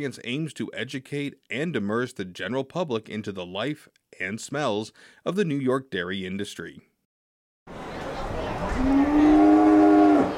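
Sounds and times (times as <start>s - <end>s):
speech: 0.0s - 6.9s
faint murmur of a watching crowd: 7.7s - 10.3s
pregnant Holstein dairy cow mooing in a pen: 8.8s - 10.3s.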